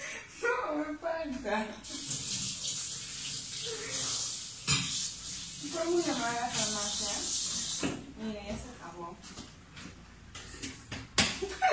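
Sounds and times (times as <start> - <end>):
speech: 0.8 - 2.1, 5.8 - 9.5
water running from a tap: 1.8 - 8.2
laughter: 11.4 - 11.7.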